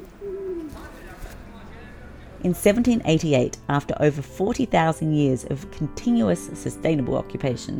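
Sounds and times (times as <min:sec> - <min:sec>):
seagulls at Circular Quay harbour in Sydney: 0:00.0 - 0:01.7
footsteps at Circular Quay harbour: 0:00.0 - 0:01.8
pigeon cooing at Circular Quay harbour in Sydney Australia: 0:00.0 - 0:01.8
speech: 0:02.4 - 0:07.7.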